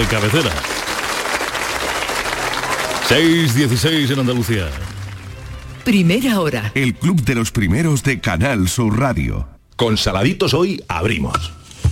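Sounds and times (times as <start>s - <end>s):
speech: 0.0s - 0.8s, 3.1s - 4.8s, 5.8s - 11.6s
studio audience applause on a morning radio show: 0.0s - 6.6s.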